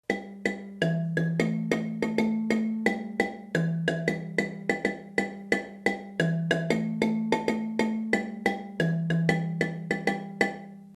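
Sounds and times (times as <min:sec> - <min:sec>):
high line on marimba: 0:00.1 - 0:10.9.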